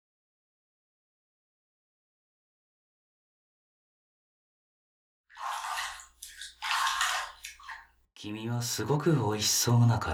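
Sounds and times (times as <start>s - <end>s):
shower water spraying in a hotel shower: 5.4s - 7.8s
speech: 8.2s - 10.1s.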